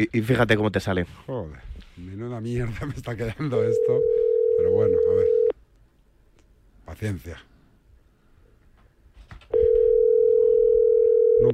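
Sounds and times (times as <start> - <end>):
speech: 0.0 - 5.4, 6.9 - 7.5
faint noise: 0.0 - 11.5
telephone tone while someone places a call: 3.7 - 5.5, 9.5 - 11.5.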